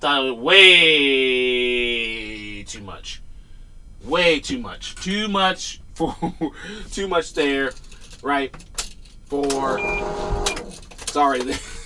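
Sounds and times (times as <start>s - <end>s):
speech: 0.0s - 1.5s, 4.0s - 8.7s, 9.3s - 11.7s
clothes dryer end-of-cycle buzzer with a steady electronic tone: 9.5s - 10.8s.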